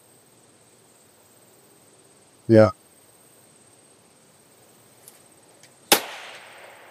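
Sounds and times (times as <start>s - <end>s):
speech: 2.5s - 2.8s
suppressor-fitted rifle fired at a paper target: 5.9s - 6.8s.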